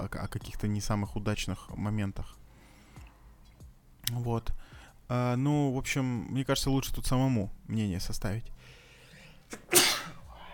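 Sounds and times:
speech: 0:00.2 - 0:02.4, 0:04.1 - 0:08.8
sneeze: 0:09.5 - 0:10.2.

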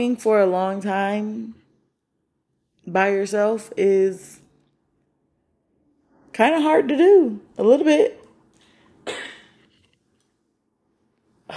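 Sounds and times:
speech: 0:00.0 - 0:01.6, 0:02.9 - 0:04.4, 0:06.4 - 0:08.2
girl coughing: 0:09.0 - 0:09.6.

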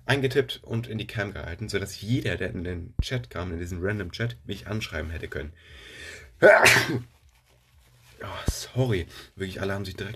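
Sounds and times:
speech: 0:00.1 - 0:07.2, 0:08.2 - 0:10.1
person sneezing: 0:06.4 - 0:07.1.

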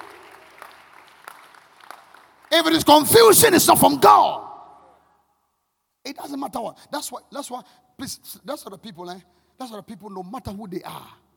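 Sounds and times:
congregation clapping hands: 0:00.0 - 0:03.1
speech: 0:02.5 - 0:04.4, 0:06.1 - 0:11.2.

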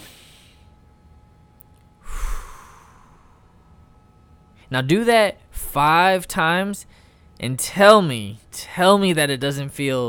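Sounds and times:
deep breath in through the nose and out through the mouth: 0:00.0 - 0:00.7, 0:02.0 - 0:04.0, 0:06.9 - 0:07.4
speech: 0:04.7 - 0:10.0.

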